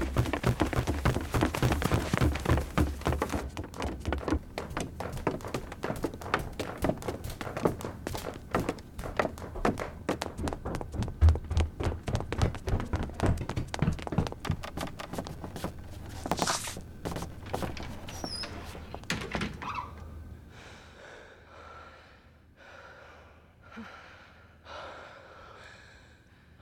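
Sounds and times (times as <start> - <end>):
heavy footsteps running up a staircase: 0.0 - 19.7.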